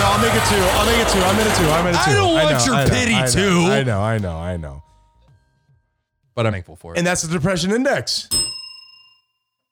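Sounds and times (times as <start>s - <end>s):
speech: 0.2s - 4.9s, 6.3s - 8.6s
bright bell ding: 8.3s - 9.6s.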